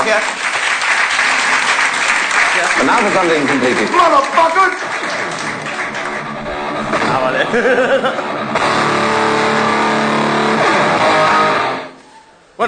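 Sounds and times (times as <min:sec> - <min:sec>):
sustained audience applause: 0:00.0 - 0:10.9
speech: 0:00.1 - 0:00.5, 0:02.6 - 0:05.4, 0:06.9 - 0:08.7
laughter in the audience: 0:07.3 - 0:08.3.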